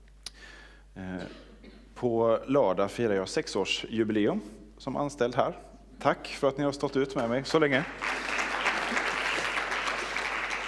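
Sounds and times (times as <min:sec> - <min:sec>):
speech: 0:01.0 - 0:01.4, 0:02.0 - 0:08.2
room full of people clapping: 0:07.6 - 0:10.6.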